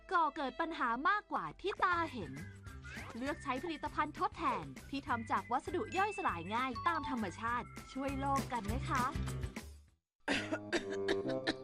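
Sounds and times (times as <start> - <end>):
speech: 0.3 - 9.4
woman with an irritated throat coughing heavily: 10.3 - 11.3.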